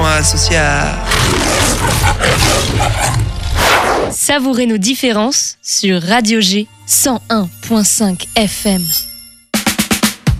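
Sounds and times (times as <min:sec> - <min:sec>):
speech: 0:00.2 - 0:09.1
big lion roar with sustained rough growl: 0:01.1 - 0:04.2.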